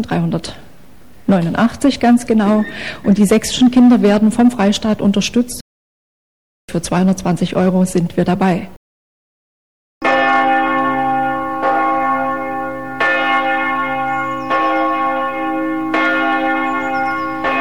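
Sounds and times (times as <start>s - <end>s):
speech: 0.0s - 0.7s, 1.3s - 5.6s, 6.7s - 8.8s
bells of Meißen Cathedral in Meißen pealing: 0.0s - 4.5s, 10.0s - 17.5s.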